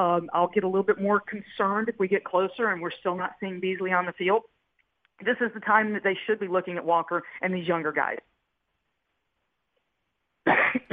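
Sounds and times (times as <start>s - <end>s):
speech: 0.0s - 4.6s, 5.2s - 8.3s
man giving a harsh rasping cough: 10.4s - 10.9s.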